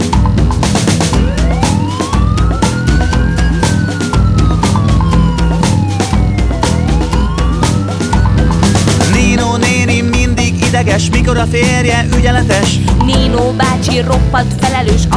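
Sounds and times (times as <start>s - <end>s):
busy rhythmic music with a steady beat: 0.0s - 15.1s
emergency vehicle siren wailing: 1.1s - 9.5s
speech: 11.4s - 15.1s.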